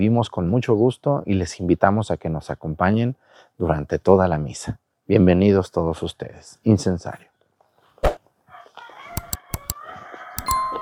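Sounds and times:
speech: 0.0s - 7.3s
rooster crowing: 8.5s - 9.2s, 9.8s - 10.4s
sharp clicking knocks: 9.2s - 9.8s, 10.4s - 10.8s.

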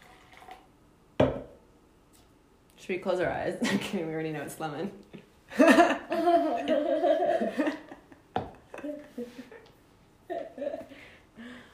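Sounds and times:
lemon-flavoured drink poured into small sample cups: 0.0s - 0.7s
speech: 2.9s - 7.8s, 8.8s - 9.5s.

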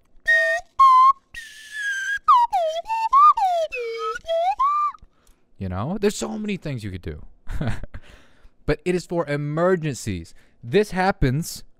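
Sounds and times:
slide whistle: 0.2s - 5.0s
speech: 5.6s - 11.7s.

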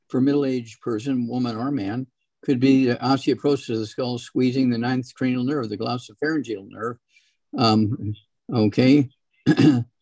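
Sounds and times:
speech: 0.1s - 9.9s
person clearing throat from built-up mucus: 9.5s - 9.9s.

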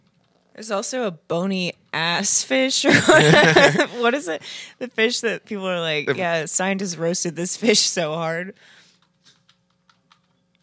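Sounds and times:
speech: 0.6s - 8.8s
laughter: 2.9s - 4.2s
typing on a computer keyboard: 9.0s - 10.6s.

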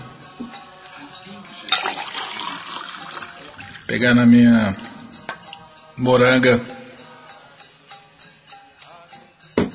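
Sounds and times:
water poured into a glass for drinking: 1.6s - 3.9s
speech: 3.9s - 4.8s, 6.0s - 6.8s.

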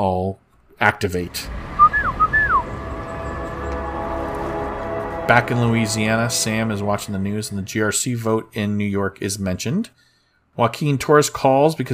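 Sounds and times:
speech: 0.0s - 1.6s, 5.3s - 10.0s, 10.6s - 11.9s
steady low rumble: 1.0s - 8.0s
brief two-note human whistle sliding downward: 1.8s - 2.6s.

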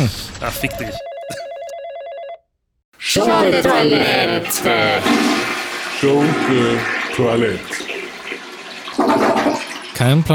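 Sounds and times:
speech: 0.0s - 1.1s, 3.1s - 7.9s, 10.0s - 10.3s
telephone bell ringing: 0.6s - 2.5s
laughter: 3.0s - 7.9s.

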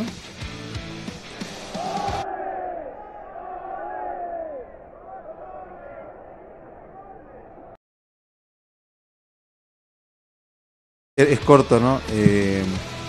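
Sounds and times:
large stadium crowd chanting at an international tournament match: 1.3s - 7.8s
speech: 11.2s - 12.9s.

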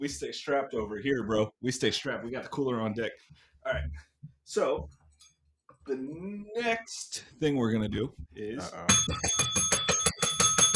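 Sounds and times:
speech: 0.0s - 5.0s, 5.8s - 9.8s
hand bell rung rapidly: 8.9s - 10.7s.

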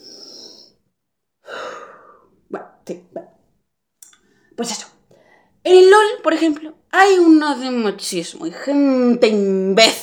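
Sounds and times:
person breathing deeply to calm down: 0.0s - 0.8s, 1.4s - 2.4s
speech: 2.5s - 3.3s, 4.6s - 4.9s, 5.6s - 10.0s.

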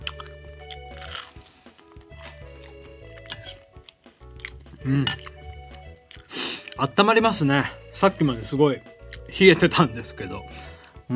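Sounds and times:
chewing and crunching of bread dipped in chicken soup: 0.0s - 6.9s, 9.0s - 9.3s
moist mouth sounds: 0.0s - 6.9s
speech: 4.8s - 5.2s, 6.8s - 11.1s.

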